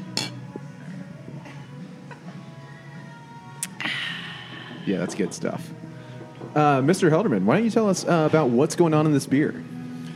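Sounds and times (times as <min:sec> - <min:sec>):
beer glasses clinking in a toast: 0:00.0 - 0:00.5
speech: 0:04.9 - 0:05.9, 0:06.5 - 0:09.8.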